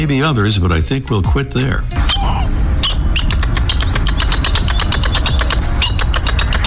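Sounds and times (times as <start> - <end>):
speech: 0.0 - 2.1
low rumbling background: 0.0 - 6.6
northern jacana calling: 2.0 - 6.6.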